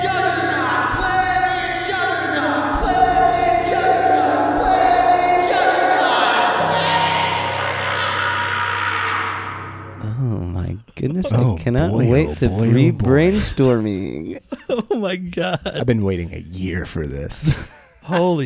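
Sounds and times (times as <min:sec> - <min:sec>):
large crowd chanting loudly in unison: 0:00.0 - 0:13.8
laughter: 0:00.0 - 0:18.4
speech: 0:11.2 - 0:18.4.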